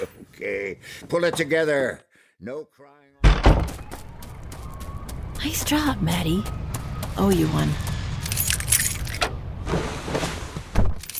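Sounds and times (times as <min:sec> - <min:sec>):
speech: 0:00.0 - 0:03.8, 0:05.4 - 0:07.9
keys jingling: 0:08.2 - 0:09.2, 0:11.0 - 0:11.1.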